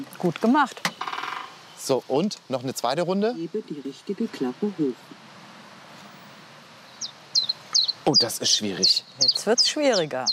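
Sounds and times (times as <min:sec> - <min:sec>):
faint background hiss: 0:00.0 - 0:10.3
speech: 0:00.1 - 0:01.1, 0:01.8 - 0:05.2, 0:08.1 - 0:10.3
common chiffchaff singing at an interactive bird-song station: 0:06.8 - 0:10.3.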